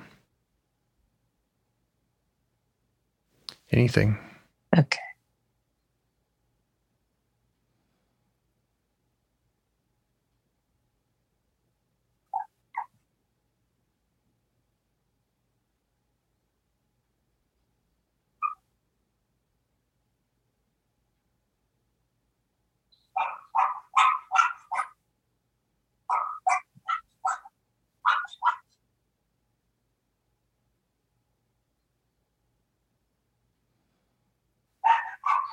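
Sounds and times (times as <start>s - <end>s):
speech: 3.7s - 5.1s
dog barking in short sharp yaps: 12.3s - 12.9s, 18.4s - 18.6s, 23.1s - 25.0s, 26.1s - 28.8s, 34.8s - 35.5s.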